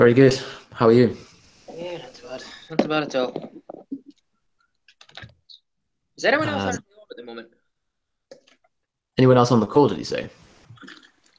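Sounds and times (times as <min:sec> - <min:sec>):
speech: 0:00.0 - 0:03.7, 0:06.2 - 0:07.6, 0:09.2 - 0:11.3
typing on a computer keyboard: 0:04.8 - 0:05.4.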